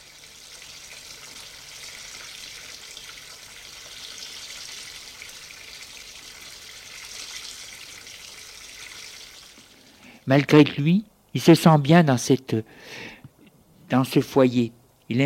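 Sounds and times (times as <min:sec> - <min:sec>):
shower water running in a home for young offenders: 0:00.0 - 0:10.1
speech: 0:10.3 - 0:13.1, 0:13.9 - 0:15.2.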